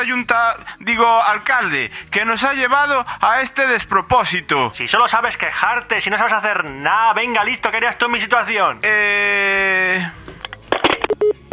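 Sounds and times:
speech: 0.0s - 10.2s
telephone line clicks: 10.4s - 11.4s
short identical telephone beeps of a cut-off call: 10.8s - 11.5s
steady telephone tone: 10.9s - 11.5s.

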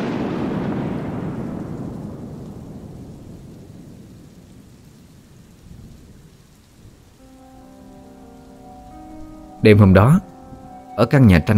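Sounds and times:
steady rain: 0.0s - 11.5s
thunderclap rumbling in a thunderstorm with lightning: 0.0s - 11.5s
soft sustained tones: 7.2s - 11.5s
speech: 9.6s - 10.3s, 11.0s - 11.5s.

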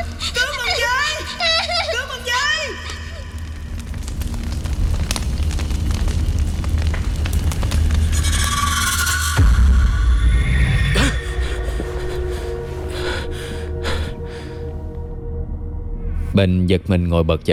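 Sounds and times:
fire burning aboard a boat: 0.0s - 15.1s
speech: 16.4s - 17.5s.

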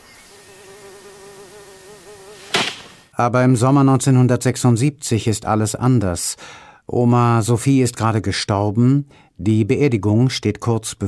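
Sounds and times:
wasps buzzing in a garden: 0.0s - 3.1s
speech: 3.2s - 11.0s.

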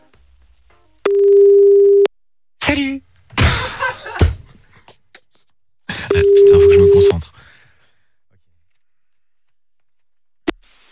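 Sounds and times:
ringing tone of an outgoing telephone call: 1.1s - 2.1s, 6.1s - 7.1s
speech: 2.7s - 3.1s.

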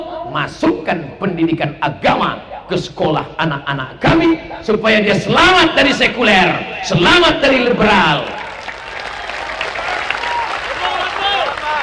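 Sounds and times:
speech: 0.3s - 8.4s
audience applause at an outdoor religious gathering in Tanjung Uma, Batam: 8.3s - 11.8s.

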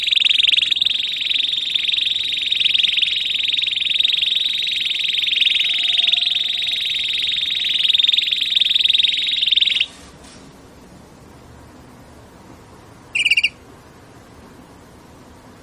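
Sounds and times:
Belgian domestic canary singing a rolling trill: 0.0s - 9.9s, 13.1s - 13.6s
faint background hiss: 0.0s - 15.6s.

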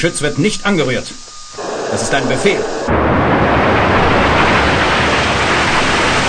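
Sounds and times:
speech: 0.0s - 3.8s
spaceship taking off and departing in a sci-fi radio drama: 1.5s - 6.1s.

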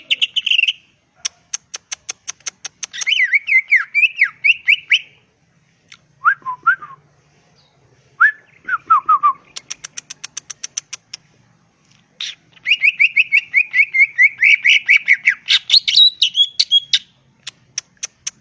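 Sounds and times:
greater green leafbird singing vigorously: 0.0s - 0.9s, 2.8s - 5.2s, 7.6s - 10.9s, 12.2s - 18.3s.

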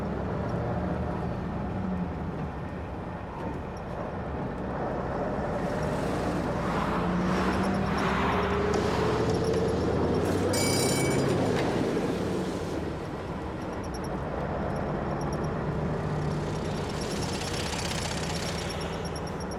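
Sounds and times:
bus engine rumbling as the bus pulls away: 0.0s - 19.5s.

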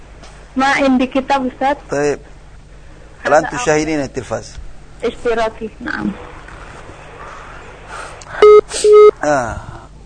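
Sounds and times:
speech: 0.6s - 2.3s, 3.2s - 6.3s, 8.8s - 9.7s
phone line tones as a call-in telephone connection drops: 8.4s - 9.1s.

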